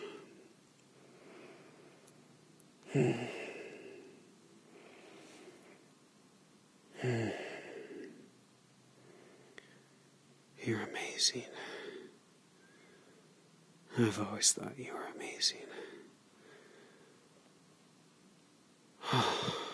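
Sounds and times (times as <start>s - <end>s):
heavy sighing breaths: 0.0s - 2.1s, 2.8s - 5.9s, 6.9s - 8.3s, 11.5s - 13.4s, 15.6s - 17.3s, 19.0s - 19.7s
slow deep breathing of two people holding each other: 0.0s - 2.2s, 2.8s - 6.0s, 6.9s - 8.3s, 8.9s - 10.1s, 11.5s - 13.4s, 15.7s - 17.4s, 19.0s - 19.7s
speech: 2.9s - 3.4s, 11.2s - 11.8s, 14.0s - 16.0s.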